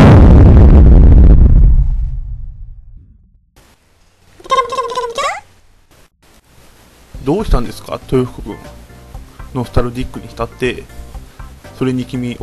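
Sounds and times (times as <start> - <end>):
sci-fi weapon blast explosion aboard a spaceship: 0.0 - 3.0
speech: 7.3 - 8.8, 9.5 - 11.0, 11.8 - 12.4.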